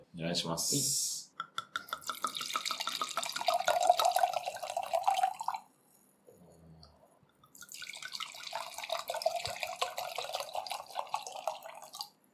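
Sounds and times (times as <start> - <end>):
speech: 0.2 - 1.2
drink pouring into a glass: 1.8 - 5.7, 7.5 - 12.1.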